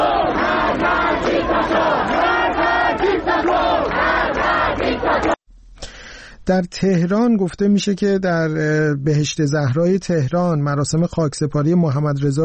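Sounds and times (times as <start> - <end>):
student protesters chanting slogans at a university sit-in: 0.0 - 5.4
speech: 6.5 - 12.4.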